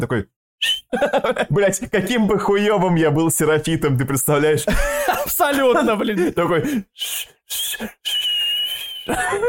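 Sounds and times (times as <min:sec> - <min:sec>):
speech: 0:00.0 - 0:08.2
person whistling imitating an enemy signal whistle: 0:00.6 - 0:00.9, 0:07.0 - 0:09.2
laughter: 0:00.9 - 0:01.6, 0:04.7 - 0:06.3, 0:09.1 - 0:09.4.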